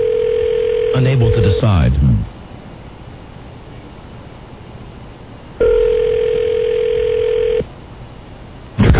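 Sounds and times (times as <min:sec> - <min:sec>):
telephone ringing tone on an outgoing call: 0:00.0 - 0:01.6, 0:05.6 - 0:07.6
speech: 0:01.0 - 0:02.3.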